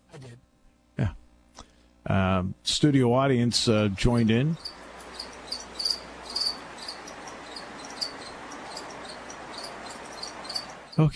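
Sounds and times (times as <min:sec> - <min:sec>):
speech: 0:02.4 - 0:04.8, 0:11.0 - 0:11.1
crickets chirping: 0:04.1 - 0:11.1.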